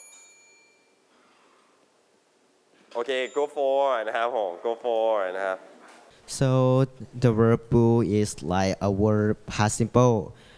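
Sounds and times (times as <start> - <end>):
bright high-pitched bell ding during a classroom quiz game: 0.0 - 1.0, 3.1 - 3.7
speech: 2.9 - 10.5.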